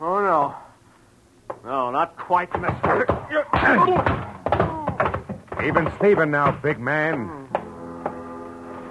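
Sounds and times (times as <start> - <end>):
speech: 1.9 - 4.3, 5.6 - 7.4
punch to the jaw: 2.6 - 5.8
people grunting: 2.8 - 6.3.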